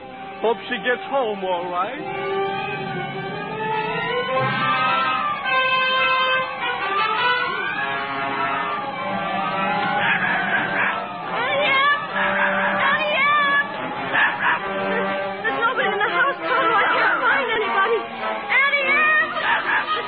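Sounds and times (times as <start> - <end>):
speech: 0.4 - 3.3
flock of chickens in a roost caught in a cyclone squawking and cackling: 2.1 - 20.0.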